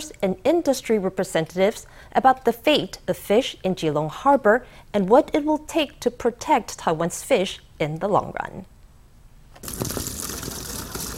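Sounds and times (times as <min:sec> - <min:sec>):
speech: 0:00.2 - 0:08.7
bucket of water dumped down a plastic chute during a fish release: 0:09.6 - 0:11.1.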